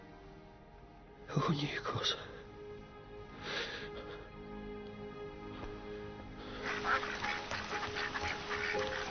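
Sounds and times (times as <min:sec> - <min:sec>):
speech: 0:01.4 - 0:02.3
steady outdoor noise: 0:04.6 - 0:09.0
ducks quacking in an overlapping chorus: 0:06.6 - 0:09.0.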